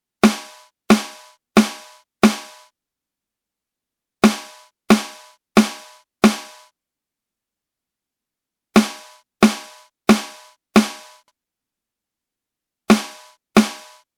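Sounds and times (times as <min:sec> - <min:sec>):
snare drum with 250Hz boost: 0:00.2 - 0:02.7, 0:04.2 - 0:06.7, 0:08.8 - 0:11.3, 0:12.9 - 0:14.0.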